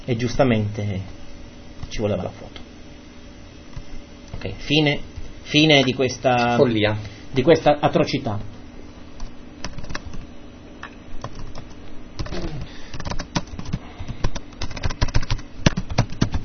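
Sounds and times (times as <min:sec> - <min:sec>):
faint steady hum: 0:00.0 - 0:16.4
speech: 0:00.1 - 0:01.2, 0:01.9 - 0:02.6, 0:04.4 - 0:08.5
typing on a computer keyboard: 0:09.6 - 0:10.2, 0:11.2 - 0:16.4.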